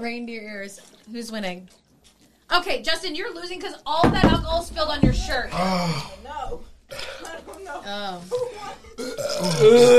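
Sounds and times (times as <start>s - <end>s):
speech: 0.0s - 1.8s, 2.5s - 9.9s
people burping in turns during a drinking game: 5.5s - 7.5s, 8.6s - 9.9s.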